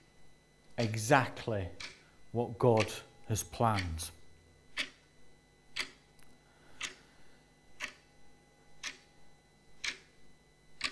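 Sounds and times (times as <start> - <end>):
faint hum: 0.0 - 10.9
speech: 0.8 - 4.2
clock ticking: 1.7 - 2.0, 2.7 - 5.0, 5.7 - 6.0, 6.8 - 7.0, 7.8 - 8.0, 8.8 - 9.0, 9.8 - 10.1, 10.8 - 10.9.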